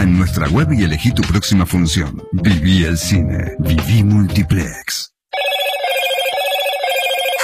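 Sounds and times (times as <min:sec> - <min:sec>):
speech: 0:00.0 - 0:05.1
bright electronic phone ringtone melody: 0:05.3 - 0:07.4.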